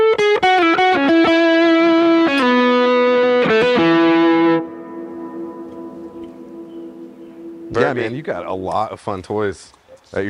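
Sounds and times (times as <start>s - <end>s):
electric guitar played through a reverb pedal: 0.0s - 8.2s
speech: 7.8s - 10.2s.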